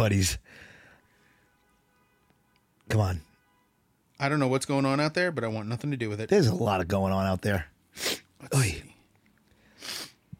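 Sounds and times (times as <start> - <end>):
speech: 0.0 - 0.7, 2.9 - 3.3, 4.2 - 8.8
person sniffling: 7.9 - 8.3, 9.6 - 10.3.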